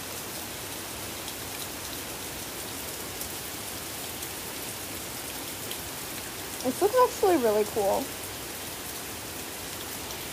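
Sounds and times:
heavy pouring rain: 0:00.0 - 0:10.3
speech: 0:06.6 - 0:08.2.

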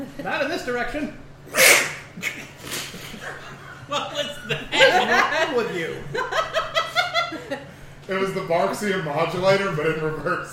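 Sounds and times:
speech: 0:00.1 - 0:02.4, 0:03.9 - 0:06.6, 0:07.5 - 0:10.5
loud sneeze: 0:01.5 - 0:03.0
laughter: 0:02.1 - 0:07.8.

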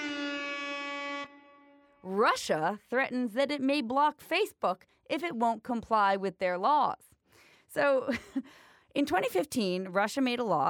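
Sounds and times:
air horn blaring with a brassy buzzing tone: 0:00.0 - 0:02.1
speech: 0:02.1 - 0:10.6.

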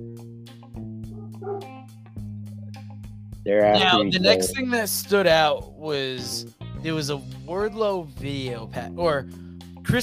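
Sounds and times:
dogs barking and yipping: 0:01.2 - 0:01.8
speech: 0:03.4 - 0:10.0.

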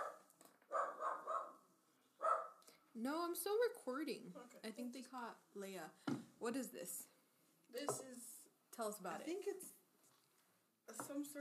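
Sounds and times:
small dog barking: 0:00.0 - 0:01.6, 0:02.2 - 0:02.6
speech: 0:03.0 - 0:07.1, 0:07.7 - 0:09.8, 0:10.9 - 0:11.4.

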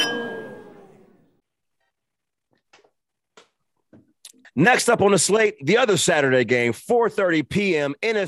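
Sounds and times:
glasses clinking in a toast: 0:00.0 - 0:00.8
speech: 0:04.6 - 0:08.2.

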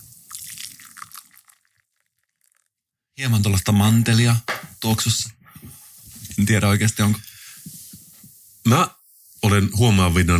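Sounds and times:
brewed coffee with crema poured from a moka pot into a cup: 0:00.0 - 0:02.7
speech: 0:03.2 - 0:05.4, 0:06.4 - 0:07.3, 0:08.7 - 0:10.3.

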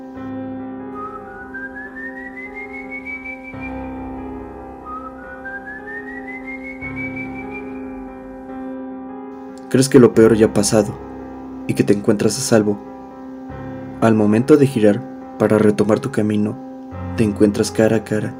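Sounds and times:
soft distant rising whistles: 0:01.0 - 0:08.1
steady low droning background: 0:02.1 - 0:18.3
speech: 0:09.7 - 0:11.1, 0:11.7 - 0:12.9, 0:14.0 - 0:16.6, 0:17.2 - 0:18.3.

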